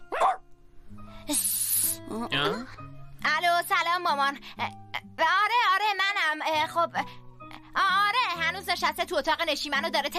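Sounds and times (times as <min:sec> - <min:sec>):
old woman's dog barking: 0:00.0 - 0:00.4
airy hissing: 0:01.3 - 0:02.1
speech: 0:01.3 - 0:02.9, 0:03.6 - 0:07.2, 0:07.8 - 0:10.1.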